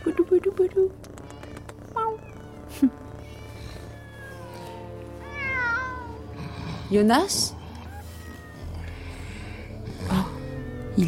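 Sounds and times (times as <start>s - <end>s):
group of about thirty cats meowing in a room: 0.0s - 6.5s, 7.5s - 11.0s
speech: 2.8s - 3.0s, 6.9s - 7.6s.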